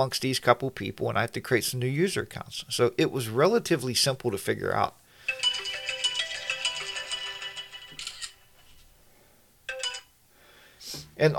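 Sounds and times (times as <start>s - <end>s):
speech: 0.0s - 5.7s
phone ringtone melody of high electronic notes: 5.2s - 8.4s, 9.7s - 10.1s.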